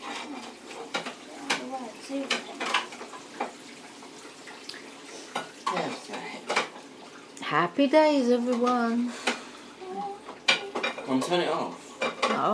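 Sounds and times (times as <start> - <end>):
dishes, pots and cutlery clattering while washing up by hand: 0.0 - 3.6, 5.3 - 6.8, 10.2 - 12.5
speech: 7.5 - 9.3, 11.1 - 12.5.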